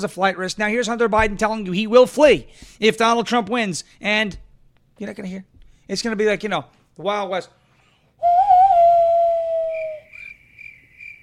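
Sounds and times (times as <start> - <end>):
speech: 0.0 - 4.4, 5.0 - 7.6
whistle-like tone: 8.2 - 10.8
crickets chirping sound effect from a soundboard: 8.2 - 11.2.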